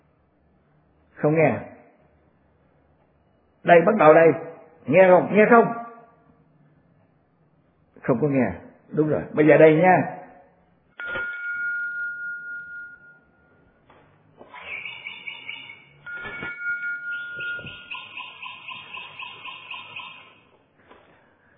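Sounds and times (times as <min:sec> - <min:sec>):
speech: 0:01.2 - 0:01.7, 0:03.6 - 0:05.8, 0:08.0 - 0:10.2
hand bell being shaken: 0:11.0 - 0:13.6, 0:16.0 - 0:18.4.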